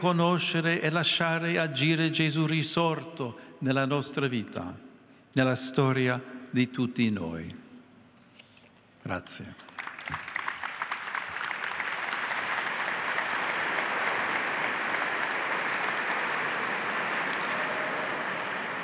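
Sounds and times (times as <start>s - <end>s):
speech: 0.0s - 7.6s, 9.0s - 10.2s
large crowd applauding: 9.6s - 18.8s.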